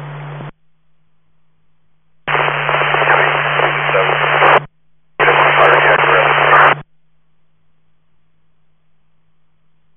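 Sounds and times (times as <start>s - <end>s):
steady low hum: 0.0s - 9.9s
fire engine radio transmission static bursts: 2.3s - 6.8s.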